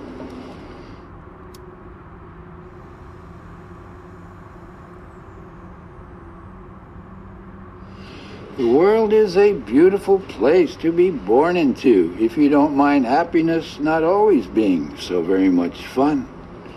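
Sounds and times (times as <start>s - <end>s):
dense street traffic of passing vehicles: 0.0s - 16.7s
speech: 8.6s - 16.3s.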